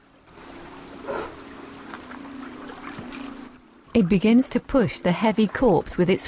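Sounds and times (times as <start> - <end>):
fast-flowing river water rushing: 0.0 - 6.2
low constant hum: 0.0 - 6.2
speech: 4.0 - 6.2.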